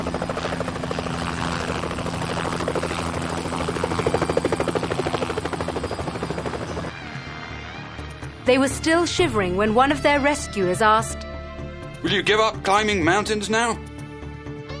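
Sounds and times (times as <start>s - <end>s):
helicopter flying with rotor chop and engine hum: 0.0s - 11.1s
speech: 8.5s - 11.2s, 12.0s - 13.9s.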